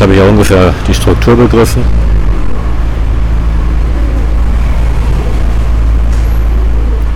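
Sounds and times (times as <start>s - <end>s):
speech: 0.0s - 2.0s
city bus engine droning: 0.0s - 7.1s
traffic noise: 0.0s - 7.1s
bus brake squeal: 2.6s - 7.1s.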